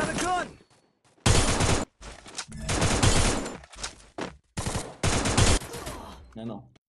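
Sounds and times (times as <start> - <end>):
mobile video game automatic gunfire: 1.2 - 1.9, 2.6 - 3.6, 4.6 - 5.9
speech: 6.4 - 6.8.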